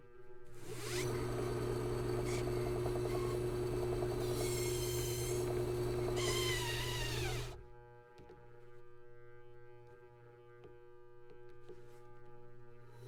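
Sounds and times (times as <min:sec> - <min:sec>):
drill press: 0:00.6 - 0:07.6.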